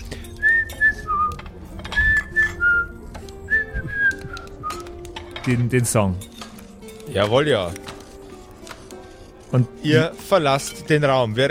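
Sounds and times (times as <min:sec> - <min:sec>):
person whistling a tune: 0:00.2 - 0:04.9
speech: 0:05.5 - 0:06.3, 0:07.1 - 0:07.9, 0:09.5 - 0:11.4.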